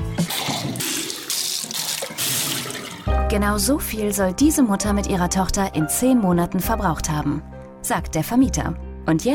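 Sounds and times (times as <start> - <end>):
water gushing from an open tap into a sink: 0.2 - 3.2
speech: 3.3 - 9.3.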